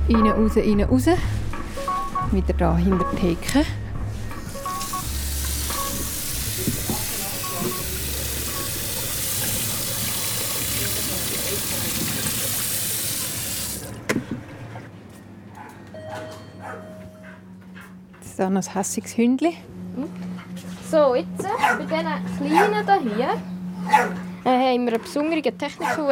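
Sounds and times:
speech: 0.1s - 1.4s, 2.3s - 3.8s, 18.5s - 19.7s, 20.9s - 24.2s, 24.7s - 26.0s
water running into a container to water plants: 4.7s - 14.0s.

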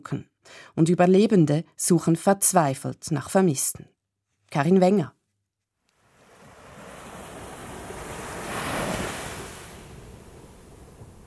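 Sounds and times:
speech: 0.0s - 5.2s
calm sea waves washing onto the shore: 5.8s - 11.2s
light steady wind hiss: 5.9s - 11.2s.

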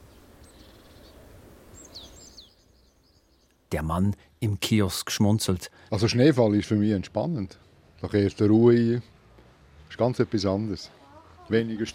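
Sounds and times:
small bird chirping in a snowy city: 0.0s - 3.7s
speech: 3.7s - 9.2s, 9.9s - 11.9s.

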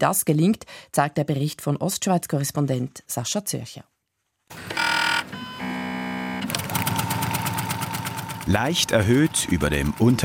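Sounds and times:
speech: 0.0s - 3.9s, 8.5s - 10.2s
Bernina sewing machine whirring and stitching in a factory outbuilding in Switzerland: 4.5s - 10.2s.

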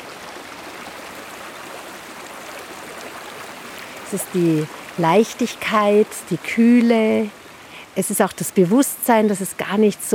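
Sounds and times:
babbling brook trickling and splashing: 0.0s - 10.1s
speech: 4.1s - 7.4s, 8.0s - 10.1s.

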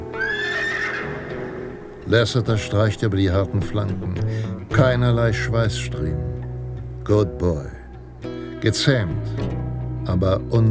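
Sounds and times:
horse whinnying: 0.0s - 2.0s
speech: 2.1s - 6.4s, 7.1s - 7.8s, 8.6s - 10.6s.

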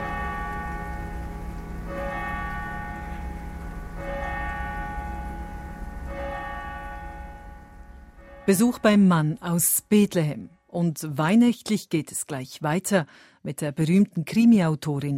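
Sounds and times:
constant patter of rain: 0.0s - 9.1s
church bell tolling with long ringing overtones: 0.0s - 10.2s
speech: 8.5s - 15.1s.

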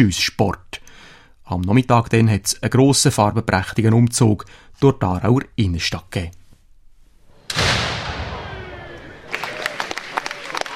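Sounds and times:
speech: 0.0s - 0.7s, 1.5s - 6.4s
ceremonial cannon shot with long decaying echo: 7.5s - 9.2s
crowd applause and clapping: 8.4s - 10.7s.

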